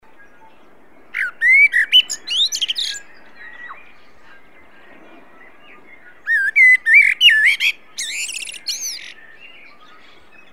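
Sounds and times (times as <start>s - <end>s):
common blackbird Turdus merula singing: 0.1s - 10.5s.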